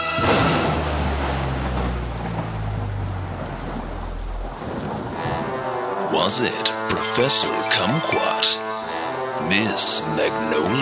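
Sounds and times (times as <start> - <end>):
steady hissing rainfall: 0.0 - 10.8
long deep rumble of thunder: 0.2 - 6.0
speech: 6.3 - 8.6, 9.5 - 10.8.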